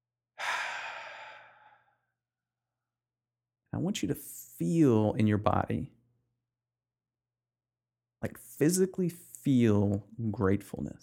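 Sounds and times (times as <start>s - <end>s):
deep breath: 0.4s - 2.1s
speech: 3.7s - 6.0s, 8.2s - 11.0s.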